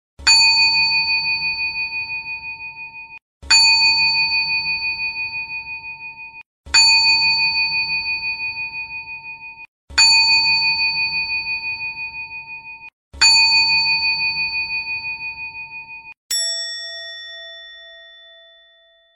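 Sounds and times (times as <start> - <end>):
ding: 0.3 - 19.1.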